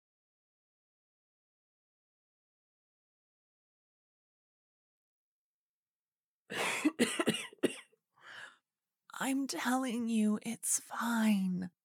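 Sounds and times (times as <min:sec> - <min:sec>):
harsh raspy coughing fit: 0:06.5 - 0:07.9
speech: 0:09.2 - 0:11.8.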